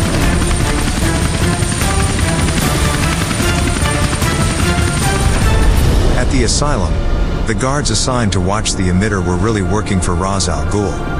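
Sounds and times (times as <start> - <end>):
helicopter engine and rotor noise by a burning manor: 0.0 - 6.0
speech: 6.4 - 11.1.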